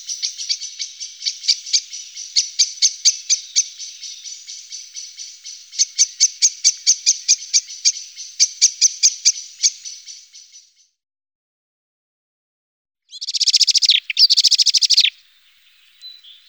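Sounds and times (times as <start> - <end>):
Common blackbird rattling alarm chatters: 0.0 - 10.4, 13.2 - 15.1
Common blackbird alarm chinks: 0.0 - 10.6, 13.2 - 16.4.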